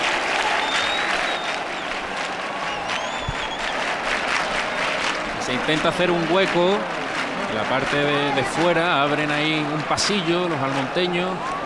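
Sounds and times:
large crowd clapping outdoors outside a church: 0:00.0 - 0:11.6
faint whistles from a crowd: 0:00.5 - 0:01.9, 0:02.7 - 0:03.8
speech: 0:05.5 - 0:11.6.

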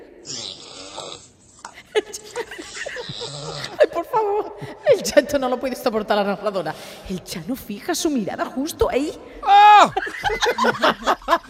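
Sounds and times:
long raspy snore with breathy snort: 0:00.2 - 0:01.3
laughter: 0:01.7 - 0:04.4, 0:09.6 - 0:11.4
speech: 0:04.0 - 0:11.4.

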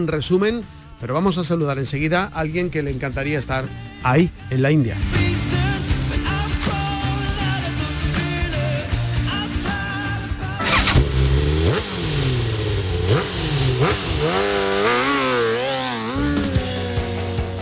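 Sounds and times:
speech: 0:00.0 - 0:05.2
racing motorcycle engines revving: 0:05.0 - 0:17.6.

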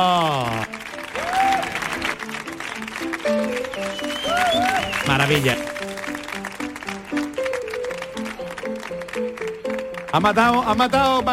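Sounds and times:
audience applauding loudly: 0:00.0 - 0:11.3
whistling: 0:03.7 - 0:05.4
speech: 0:05.1 - 0:05.8, 0:10.1 - 0:11.3.

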